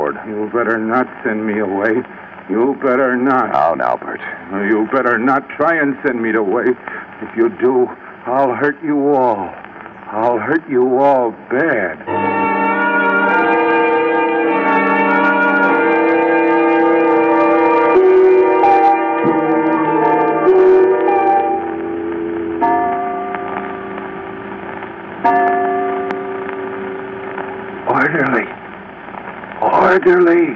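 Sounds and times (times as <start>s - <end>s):
speech: 0.1s - 12.3s, 30.0s - 30.5s
clock chiming the hour with resonant bell strokes: 12.1s - 24.4s, 25.2s - 27.5s.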